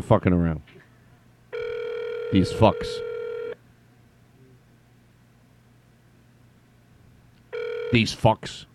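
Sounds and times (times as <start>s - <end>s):
speech: 0.0s - 0.7s, 2.3s - 3.1s, 7.9s - 8.7s
telephone keypad tone: 1.6s - 3.6s, 7.5s - 8.0s.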